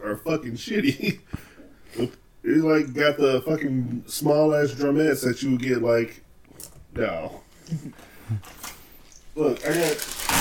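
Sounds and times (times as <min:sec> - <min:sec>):
speech: 0:00.1 - 0:06.2, 0:06.9 - 0:08.7, 0:09.4 - 0:10.3
paper towels rustling and crinkling: 0:09.4 - 0:10.3.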